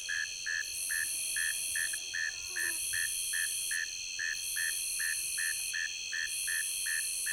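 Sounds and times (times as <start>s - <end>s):
northern mole cricket buzzy chirps: 0.0s - 7.3s.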